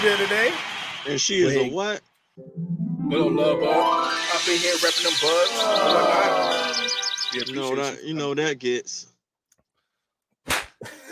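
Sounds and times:
speech: 0:00.0 - 0:09.1
slap sound effect: 0:10.4 - 0:10.8.

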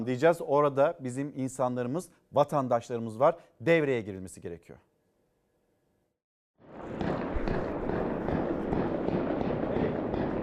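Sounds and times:
speech: 0:00.0 - 0:04.9
dense continuous gunfire: 0:06.6 - 0:10.4.

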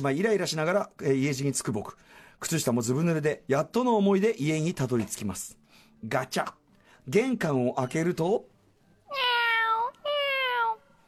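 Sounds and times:
speech: 0:00.0 - 0:08.5
person imitating drawn-out cat meows: 0:09.1 - 0:10.9.

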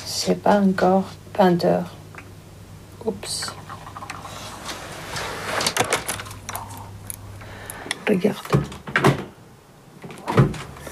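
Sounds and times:
speech: 0:00.2 - 0:02.0, 0:03.0 - 0:03.6, 0:08.1 - 0:09.1
refrigerator door opening and closing: 0:08.5 - 0:09.4, 0:10.0 - 0:10.8.

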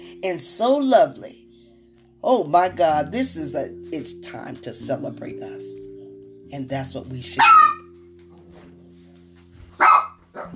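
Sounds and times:
speech: 0:00.2 - 0:01.4, 0:02.2 - 0:05.8, 0:06.5 - 0:07.7
dog barking: 0:07.4 - 0:07.8, 0:09.8 - 0:10.5.

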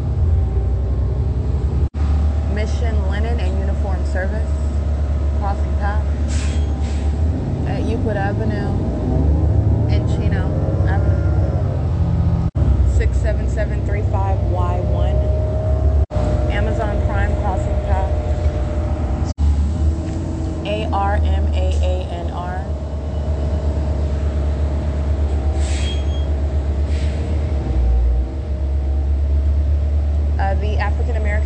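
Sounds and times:
city bus engine rumble and road noise inside a moving bus: 0:00.0 - 0:31.4
rattles and squeaks inside a moving city bus: 0:06.2 - 0:07.2, 0:23.0 - 0:27.4.

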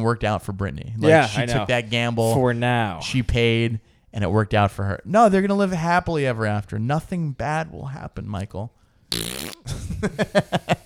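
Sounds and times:
speech: 0:00.0 - 0:10.8
hand-made fart noise with a hand pressed against the face: 0:09.1 - 0:09.7.

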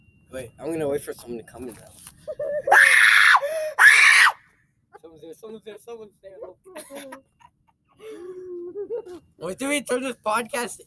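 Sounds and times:
speech: 0:00.3 - 0:02.8, 0:05.2 - 0:07.4, 0:08.0 - 0:10.8
loud piercing human screams: 0:02.7 - 0:04.4.

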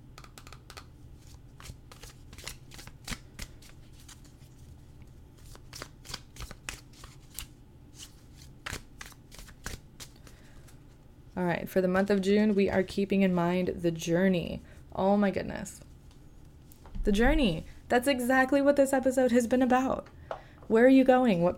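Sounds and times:
oracle deck cards being shuffled: 0:00.2 - 0:10.9
speech: 0:11.4 - 0:15.8, 0:17.0 - 0:21.5.

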